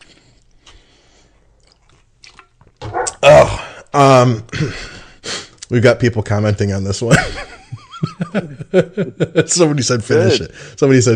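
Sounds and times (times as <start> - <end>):
wet chewing of food with crisp crunches: 0.0 - 3.2
speech: 3.9 - 4.9, 5.7 - 11.1
laughter: 7.1 - 10.5.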